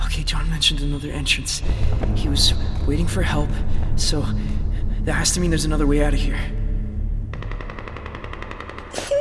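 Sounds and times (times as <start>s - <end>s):
speech: 0.2s - 6.6s
rapid burst of gunfire: 7.3s - 9.1s.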